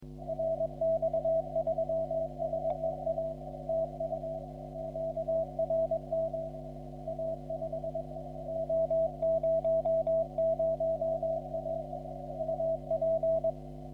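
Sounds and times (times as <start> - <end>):
morse code tones on the 40 metre amateur radio band: 0.2 - 13.6.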